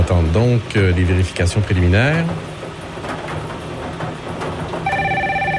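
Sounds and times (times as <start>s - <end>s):
speech: 0.1s - 2.5s
telephone ringing at a radio station: 4.9s - 5.5s.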